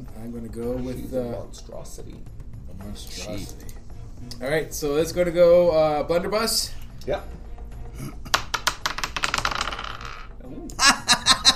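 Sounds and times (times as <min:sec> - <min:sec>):
speech: 0:00.2 - 0:07.4, 0:08.0 - 0:08.3
dice rolling across a tabletop during a tabletop role-playing game: 0:08.3 - 0:10.4
laughter: 0:10.8 - 0:11.5.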